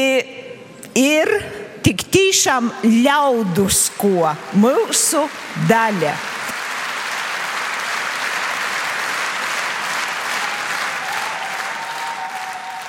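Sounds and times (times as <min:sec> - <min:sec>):
speech: 0:00.0 - 0:06.3
large audience applause: 0:05.1 - 0:12.8.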